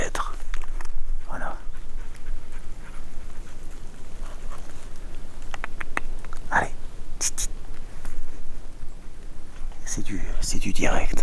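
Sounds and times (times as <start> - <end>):
dog panting and snuffling: 0.0 - 11.2
light patter: 0.0 - 11.2
sharp clicks: 2.0 - 9.9
speech: 10.6 - 11.2.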